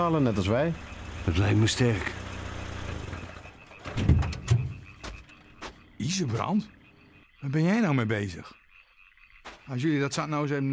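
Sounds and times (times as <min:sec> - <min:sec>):
speech: 0:00.0 - 0:02.2, 0:06.1 - 0:06.8, 0:07.4 - 0:08.6, 0:09.7 - 0:10.7
car engine idling: 0:00.0 - 0:04.9.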